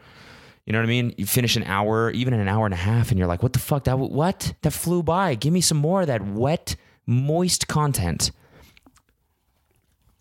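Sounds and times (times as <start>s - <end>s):
speech: 0.7s - 8.4s
faint wet mouth noises: 8.5s - 10.1s
person sipping root beer from a mug: 8.5s - 10.1s.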